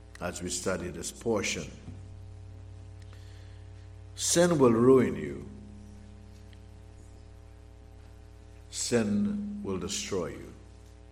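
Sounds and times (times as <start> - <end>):
steady low buzzy electrical hum: 0.0 - 11.1
speech: 0.2 - 1.9, 4.2 - 5.5, 8.9 - 10.5.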